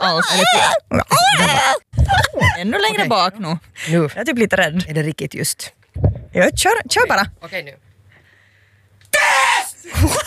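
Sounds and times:
person screaming as loud as possible: 0.0 - 2.6, 9.2 - 10.2
speech: 0.1 - 7.9, 9.2 - 10.2.

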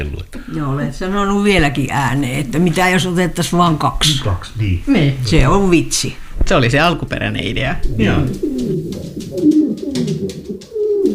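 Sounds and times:
speech: 0.0 - 10.4
several pigeons cooing: 7.4 - 11.1.

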